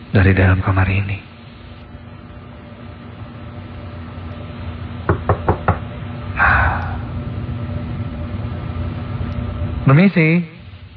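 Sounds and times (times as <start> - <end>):
steady low hum: 0.0 - 10.9
speech: 0.1 - 1.3, 9.9 - 10.6
knocking on a hotel room door: 5.1 - 5.8.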